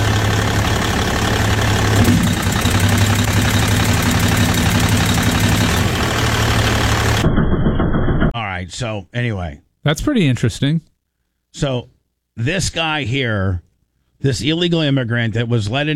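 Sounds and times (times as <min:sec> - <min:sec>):
truck engine idling: 0:00.0 - 0:07.3
mechanical knocking and clatter of hand-worked pistons: 0:01.9 - 0:06.1, 0:06.9 - 0:08.4
speech: 0:08.8 - 0:10.9, 0:11.5 - 0:13.6, 0:14.2 - 0:15.9.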